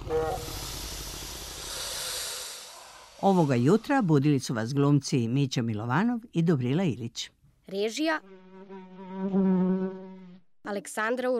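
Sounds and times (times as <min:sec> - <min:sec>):
dragon breathing in a fireplace sound effect: 0:00.0 - 0:04.3
speech: 0:03.2 - 0:09.6, 0:10.7 - 0:11.3.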